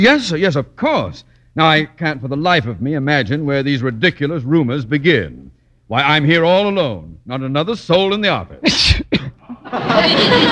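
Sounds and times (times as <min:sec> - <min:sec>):
speech: 0:00.0 - 0:10.5
sharp loud sneeze: 0:08.6 - 0:09.5
laughter: 0:09.4 - 0:10.5.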